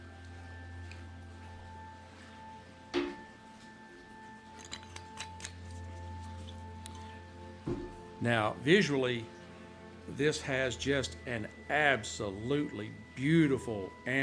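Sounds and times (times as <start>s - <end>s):
low steady hum: 0.0s - 14.2s
bottle screw cap being twisted open: 4.6s - 5.6s
speech: 7.7s - 9.4s, 10.2s - 14.2s.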